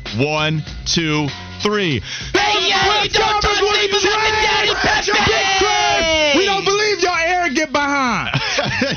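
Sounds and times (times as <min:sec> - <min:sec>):
speech: 0:00.2 - 0:07.1
group shouting a war cry: 0:02.4 - 0:06.7
laughter: 0:08.3 - 0:08.9.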